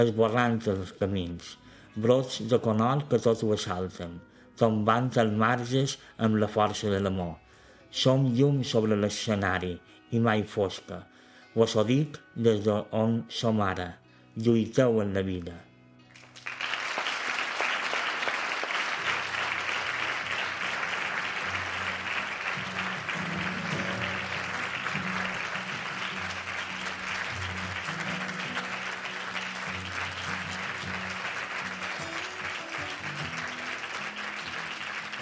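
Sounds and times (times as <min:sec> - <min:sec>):
speech: 0:00.0 - 0:15.7
large theatre audience applauding: 0:16.1 - 0:35.2.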